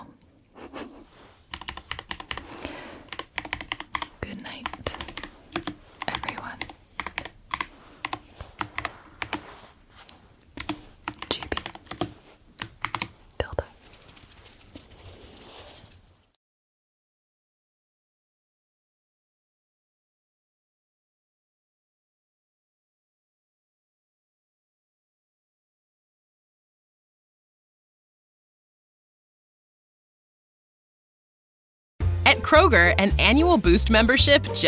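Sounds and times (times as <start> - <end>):
fast typing on a computer keyboard for racing: 1.5 - 9.5, 10.6 - 16.0
speech: 32.3 - 34.6.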